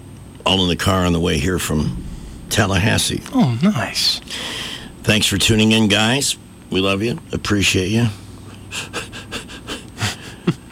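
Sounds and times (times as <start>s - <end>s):
speech: 0.5s - 9.1s
person breathing deeply: 1.8s - 2.6s, 4.1s - 5.1s.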